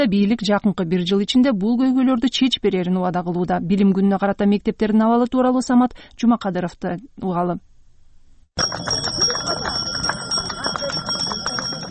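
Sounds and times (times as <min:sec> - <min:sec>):
speech: 0:00.0 - 0:07.7, 0:08.6 - 0:10.2
handbell rung by a small child for the first school bell: 0:08.6 - 0:11.8.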